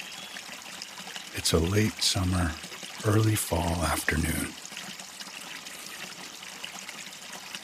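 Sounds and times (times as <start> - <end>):
gentle wind: 0.0 - 7.6
shallow creek trickling over stones: 0.0 - 7.6
speech: 1.4 - 4.6.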